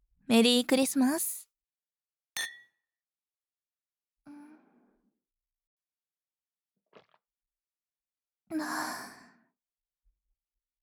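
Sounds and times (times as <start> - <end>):
speech: 0.3 - 1.4, 8.5 - 9.1
glasses clinking in a Christmas toast: 2.4 - 2.7.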